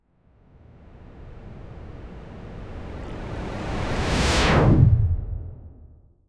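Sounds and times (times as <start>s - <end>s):
smooth fast whoosh transition: 3.7s - 5.9s.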